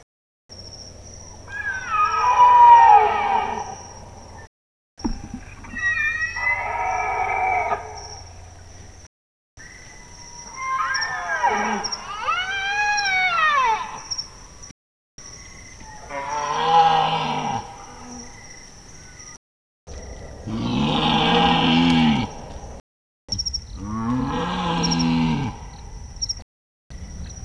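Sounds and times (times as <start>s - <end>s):
male Bactrian deer calling and roaring: 1.5s - 3.9s, 5.5s - 8.3s, 10.4s - 14.1s, 15.8s - 18.2s, 20.4s - 22.4s, 23.8s - 25.8s.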